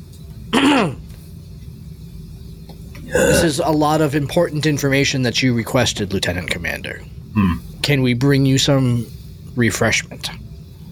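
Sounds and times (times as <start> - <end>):
man clearing his throat: 0.5 - 1.0, 3.1 - 3.5
speech: 0.8 - 1.0, 3.1 - 10.4.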